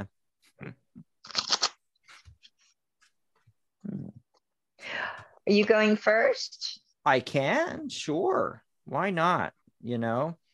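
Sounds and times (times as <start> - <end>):
speech: 0.0 - 1.4, 5.5 - 10.4
tarot cards being shuffled: 1.2 - 2.7.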